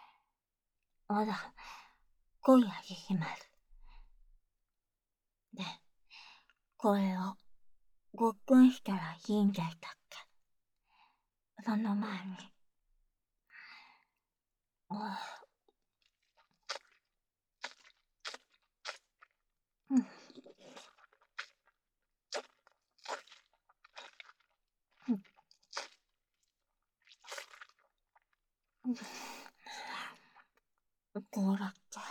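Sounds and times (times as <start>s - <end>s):
speech: 1.1s - 1.8s, 2.4s - 3.5s, 5.6s - 5.8s, 6.8s - 7.4s, 8.2s - 10.3s, 11.6s - 12.5s, 14.9s - 15.4s, 19.9s - 20.2s, 25.1s - 25.3s, 28.9s - 29.4s, 31.2s - 32.0s
person chewing strongly flavoured grassy-tasting food: 16.0s - 19.4s, 20.2s - 28.4s.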